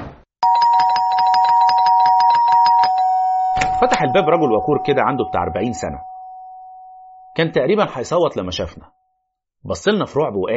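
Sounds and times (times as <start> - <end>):
doorbell held down at an apartment door buzzing: 0.4 - 7.5
speech: 3.8 - 6.1, 7.4 - 9.0, 9.6 - 10.5.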